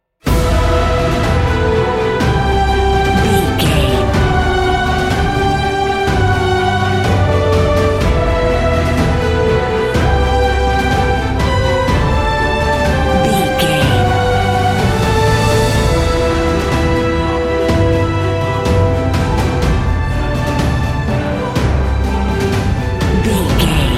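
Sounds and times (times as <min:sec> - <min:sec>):
epic cinematic music: 0:00.2 - 0:23.9.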